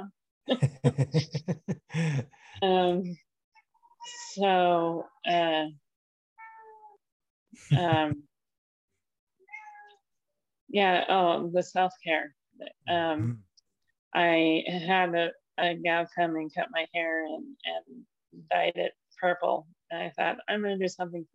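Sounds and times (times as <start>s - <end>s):
speech: 0.0s - 3.2s, 4.0s - 5.8s, 7.6s - 8.3s, 10.7s - 13.5s, 14.1s - 21.3s
laughter: 0.5s - 2.8s, 7.7s - 8.2s
cat meowing: 6.4s - 7.0s, 9.5s - 10.0s.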